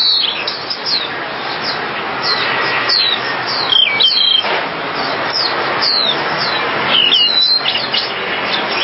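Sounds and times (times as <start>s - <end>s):
Java sparrow chirps: 0.0s - 8.8s.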